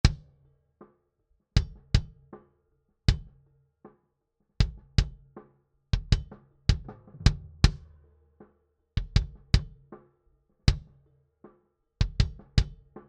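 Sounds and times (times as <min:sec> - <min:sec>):
low kick drum with bleed: 0:04.6 - 0:05.3, 0:06.0 - 0:07.9, 0:09.0 - 0:09.9, 0:10.7 - 0:10.9, 0:12.0 - 0:12.9.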